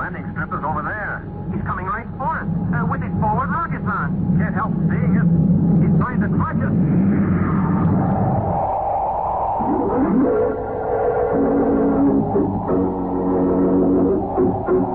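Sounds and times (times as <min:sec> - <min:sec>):
spaceship rocket engine coming in for a landing: 0:00.1 - 0:14.9
speech: 0:04.0 - 0:07.5, 0:12.3 - 0:14.9.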